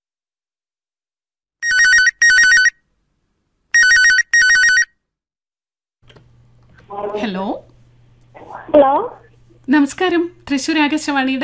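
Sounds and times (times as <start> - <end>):
telephone ringing for an incoming call: 1.6 - 2.8, 3.8 - 5.0
speech: 6.9 - 7.7, 8.6 - 11.4.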